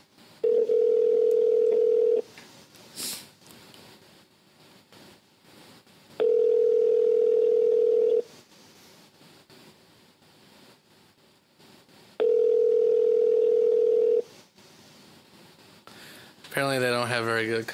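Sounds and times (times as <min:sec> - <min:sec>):
telephone ringback tone on outgoing call through a handset: 0:00.4 - 0:02.3, 0:06.2 - 0:08.3, 0:12.2 - 0:14.3
speech: 0:16.6 - 0:17.7.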